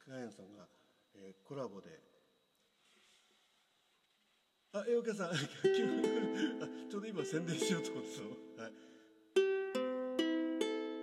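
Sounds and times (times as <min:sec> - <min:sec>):
speech: 0:00.1 - 0:02.2, 0:04.7 - 0:09.0
laughter: 0:05.3 - 0:08.4
newly bought ukulele strummed: 0:05.6 - 0:08.8, 0:09.4 - 0:11.0.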